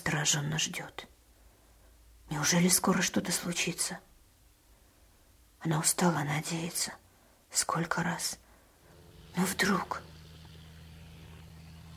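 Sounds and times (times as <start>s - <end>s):
speech: 0.0s - 1.1s, 2.3s - 4.1s, 5.6s - 8.4s, 9.4s - 10.1s
airplane engine drone passing across the sky: 8.8s - 11.9s.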